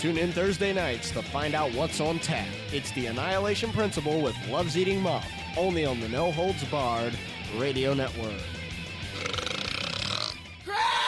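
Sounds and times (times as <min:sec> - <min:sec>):
speech: 0:00.0 - 0:08.6
long loud belch: 0:09.0 - 0:10.5.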